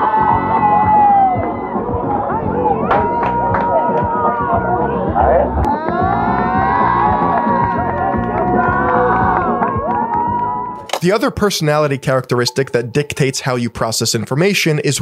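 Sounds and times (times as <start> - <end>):
high-pitched shrieks and whoops: 0.0 - 1.9, 5.7 - 10.8
large crowd screaming and cheering excitedly: 0.0 - 10.9
speech: 11.0 - 15.0.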